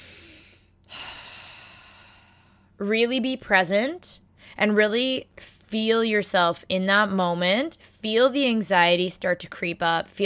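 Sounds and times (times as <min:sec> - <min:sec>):
person taking a deep breath: 0:00.0 - 0:02.8
speech: 0:02.8 - 0:10.2.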